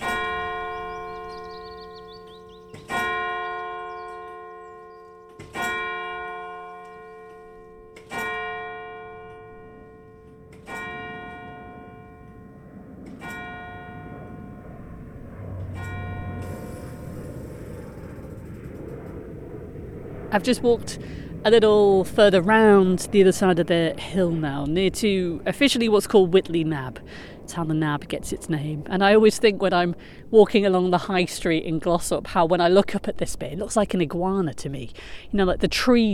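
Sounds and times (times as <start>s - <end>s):
parish church clock bell striking seven o'clock in Old Glossop: 0.0s - 15.0s, 15.6s - 17.1s
speech: 20.4s - 36.1s.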